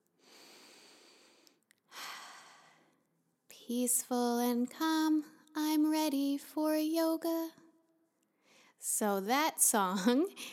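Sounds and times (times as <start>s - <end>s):
person breathing slowly and deliberately: 0.2s - 3.0s
speech: 3.7s - 7.6s, 8.8s - 10.5s.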